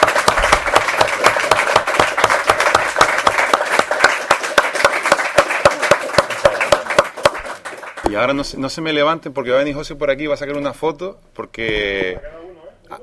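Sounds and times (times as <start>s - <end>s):
audience applause at the close of a talk: 0.0s - 8.1s
speech: 8.1s - 12.3s.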